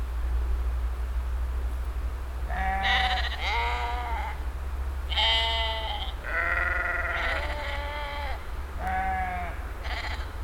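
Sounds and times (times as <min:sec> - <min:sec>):
steady low hum: 0:00.0 - 0:10.4
sheep bleating with wavering bleats: 0:02.5 - 0:04.4, 0:05.1 - 0:10.4.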